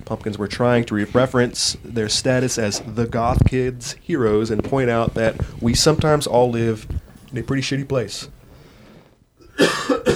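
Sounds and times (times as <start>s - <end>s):
speech: 0.0s - 8.4s
person coughing harshly: 9.4s - 10.1s.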